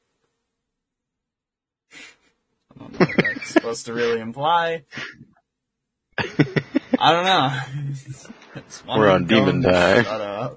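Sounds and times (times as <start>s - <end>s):
short loud rushing exhale or sniff at the microphone: 1.9s - 2.3s
laughter: 2.8s - 4.3s, 6.2s - 10.1s
speech: 3.6s - 5.2s, 6.4s - 10.5s.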